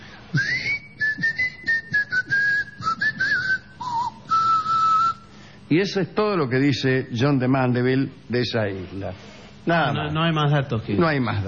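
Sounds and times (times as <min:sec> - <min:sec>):
island inhabitants whistling instead of speaking: 0:00.3 - 0:05.5
speech: 0:05.7 - 0:11.4.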